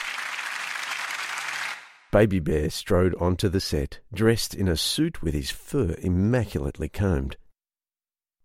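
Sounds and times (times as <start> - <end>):
crowd bursting into loud sustained applause: 0.0 - 2.1
speech: 2.1 - 7.4.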